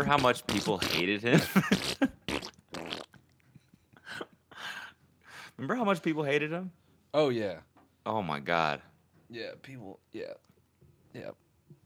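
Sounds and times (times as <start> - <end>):
speech: 0.0 - 2.2, 5.6 - 10.5, 11.1 - 11.4
loud raspy sputtering fart sounds: 0.0 - 3.4.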